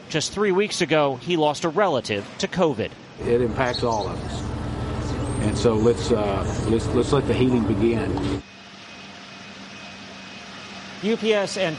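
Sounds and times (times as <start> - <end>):
speech: 0.1 - 4.6, 5.4 - 8.5, 11.0 - 11.7
low hum: 3.2 - 11.0
cargo airplane engine drone while loaded with vaccine deliveries: 3.2 - 11.7.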